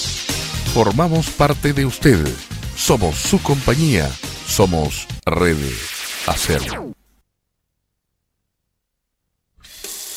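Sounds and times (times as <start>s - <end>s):
speech: 0.7s - 7.0s
water gushing from a tap into a sink: 9.6s - 10.1s.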